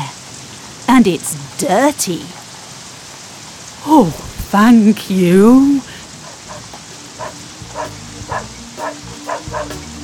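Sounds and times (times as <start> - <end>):
constant hiss like rain: 0.0 - 10.0
speech: 1.0 - 2.4, 3.8 - 5.9
dog barking: 6.2 - 9.8.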